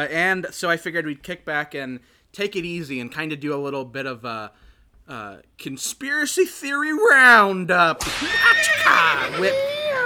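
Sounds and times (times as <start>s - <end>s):
speech: 0.0s - 10.0s
horse whinnying: 8.3s - 9.4s.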